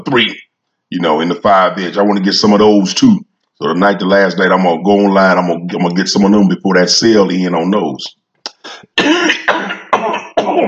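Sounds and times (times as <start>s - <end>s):
speech: 0.0s - 10.6s
person clearing their throat loudly: 8.5s - 10.6s
person coughing: 8.5s - 10.6s.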